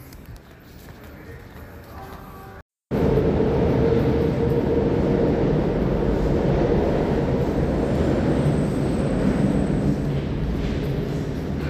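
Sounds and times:
train passing overhead above a pedestrian subway tunnel: 2.9s - 11.6s.

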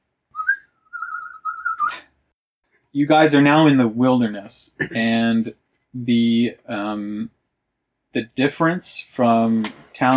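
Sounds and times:
person whistling a short steady melody: 0.4s - 2.0s
speech: 2.9s - 7.4s, 8.1s - 10.1s.

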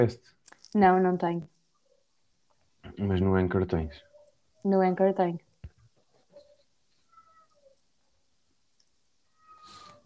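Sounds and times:
speech: 0.0s - 1.6s, 2.9s - 5.4s
cat meowing: 7.1s - 7.7s, 9.3s - 10.0s.

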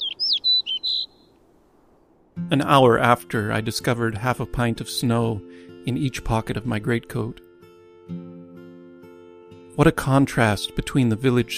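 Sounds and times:
snow bunting whistled calls: 0.0s - 1.3s
speech: 2.5s - 7.4s, 8.1s - 8.3s, 9.8s - 11.5s.

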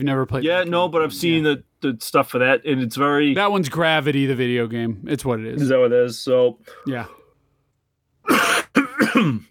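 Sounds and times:
speech: 0.0s - 7.2s, 8.3s - 9.5s
person coughing after beer went down the wrong pipe: 8.2s - 9.5s.

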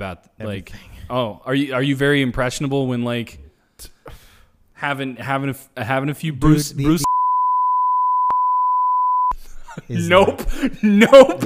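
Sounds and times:
speech: 0.0s - 4.2s, 4.8s - 7.0s, 9.8s - 11.4s
mid-pitched censor beep: 7.0s - 9.4s.

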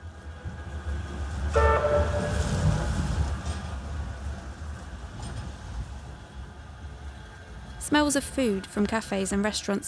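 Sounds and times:
steady low rumble of city traffic: 0.0s - 9.8s
tram horn toot: 1.3s - 3.3s
speech: 7.9s - 9.8s.

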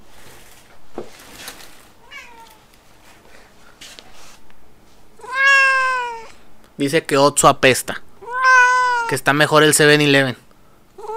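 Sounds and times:
faint rustling: 0.0s - 5.2s
cat meowing: 2.0s - 2.6s, 5.2s - 6.4s, 8.2s - 9.2s, 11.0s - 11.1s
speech: 6.8s - 8.0s, 9.1s - 10.4s.

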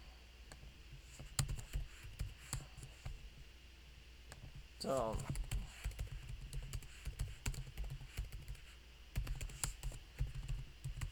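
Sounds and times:
low hum: 0.0s - 11.1s
typing on a computer keyboard: 1.2s - 2.6s, 5.1s - 11.1s
speech: 4.8s - 5.4s.

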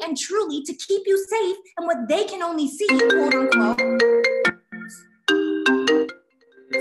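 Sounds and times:
speech: 0.0s - 5.1s
phone ringtone with bright melodic electronic jingle: 2.9s - 6.7s.

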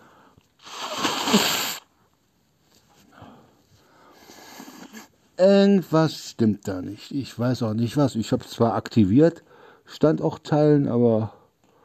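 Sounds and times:
sniffling: 0.0s - 1.9s, 3.0s - 5.2s
nose blowing into a tissue: 0.6s - 1.9s, 4.2s - 5.1s
speech: 5.4s - 11.4s.

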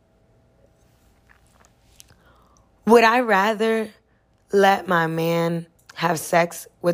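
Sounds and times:
sipping a drink with wet mouth sounds: 1.1s - 2.6s
speech: 2.9s - 6.9s.

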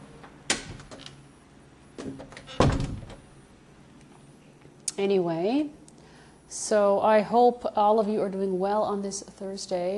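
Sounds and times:
steady low hum: 0.0s - 9.9s
speech: 2.0s - 2.3s, 5.0s - 5.8s, 6.5s - 9.9s
door pushed shut: 2.0s - 3.3s.

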